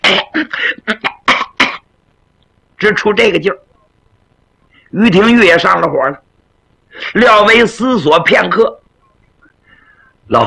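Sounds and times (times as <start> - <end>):
coughing from an itchy throat: 0.0 - 1.9
speech: 2.8 - 3.7, 4.9 - 6.2, 7.0 - 8.8, 10.3 - 10.4.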